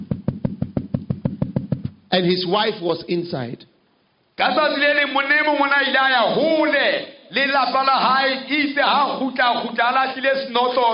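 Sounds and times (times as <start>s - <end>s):
man knocking on the door of a house: 0.0s - 2.0s
speech: 2.1s - 3.7s, 4.4s - 10.9s.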